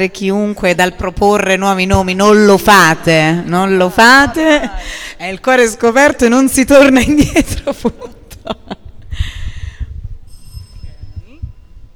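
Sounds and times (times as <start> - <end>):
speech: 0.0 - 9.3
small bell ringing to signal the end of a session: 10.3 - 11.9.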